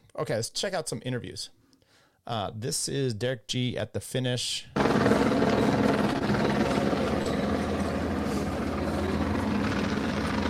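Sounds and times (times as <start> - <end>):
speech: 0.2 - 1.6, 2.2 - 6.6
helicopter flying overhead with rotor thrum and engine drone: 4.8 - 10.4.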